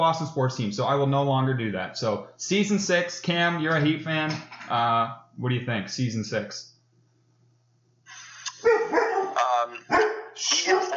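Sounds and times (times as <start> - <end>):
speech: 0.0 - 6.7
dog barking and yelping: 8.6 - 10.9.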